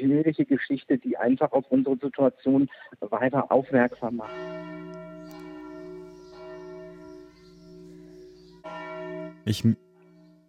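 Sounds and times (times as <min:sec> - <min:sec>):
speech: 0:00.1 - 0:05.4, 0:09.4 - 0:09.8
church bells ringing in Tempelhof Berlin: 0:03.6 - 0:10.4.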